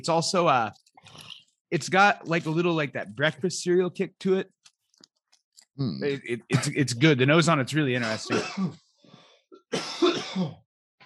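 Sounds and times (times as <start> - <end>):
speech: 0.0 - 4.6, 5.8 - 8.8, 9.7 - 10.6
harsh cough: 6.5 - 6.8, 8.0 - 8.8, 9.6 - 10.6.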